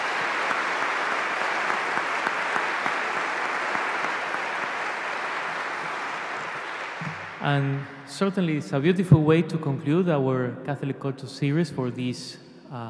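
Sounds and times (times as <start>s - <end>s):
audience applause: 0.0s - 7.9s
speech: 7.4s - 12.8s.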